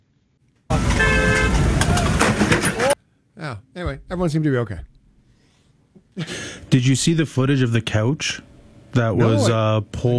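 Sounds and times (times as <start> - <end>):
car horn honking on a street: 0.7 - 1.8
loud rushing traffic noise: 0.7 - 3.0
speech: 3.4 - 5.0, 6.2 - 10.1.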